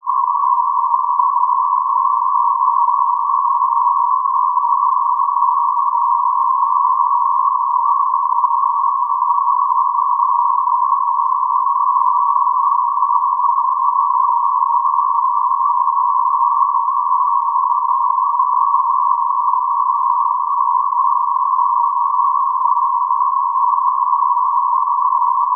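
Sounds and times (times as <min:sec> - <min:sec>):
noise: 0:00.0 - 0:25.5.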